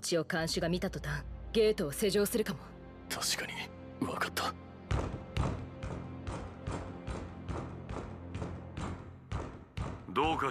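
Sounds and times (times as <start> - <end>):
speech: 0.0 - 4.6, 10.2 - 10.5
knocking on a wooden door: 4.9 - 10.4.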